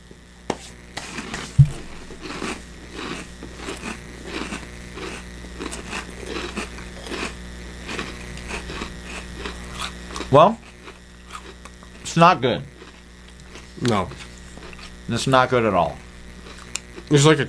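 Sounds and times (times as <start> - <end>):
chewing crunchy cinnamon cereal: 1.0 - 17.4
sharp thump: 1.6 - 2.0
speech: 10.3 - 10.6, 12.2 - 12.7, 13.8 - 14.2, 15.1 - 16.0, 17.1 - 17.4.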